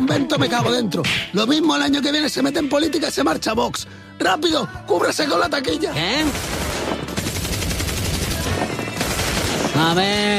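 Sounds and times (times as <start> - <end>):
speech: 0.1 - 7.0, 9.8 - 10.3
machine gun firing as a comic sound effect: 6.2 - 10.3.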